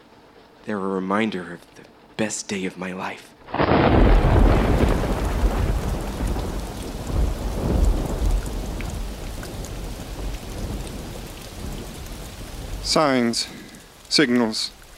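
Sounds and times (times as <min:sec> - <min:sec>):
speech: 0:00.7 - 0:05.0, 0:12.9 - 0:14.8
deep rolling rumble of thunder: 0:03.5 - 0:14.0
heavy rain: 0:03.5 - 0:14.9
wind buffeting: 0:03.6 - 0:14.1.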